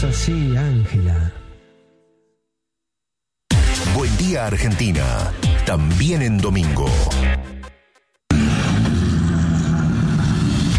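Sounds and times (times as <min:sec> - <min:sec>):
speech: 0:00.0 - 0:01.4, 0:04.0 - 0:07.6
rally car engine starting and revving: 0:08.3 - 0:10.7.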